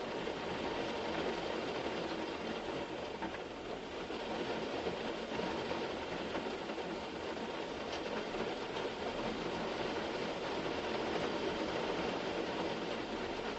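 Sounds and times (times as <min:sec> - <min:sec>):
torrential rain pounding a car: 0:00.0 - 0:13.5.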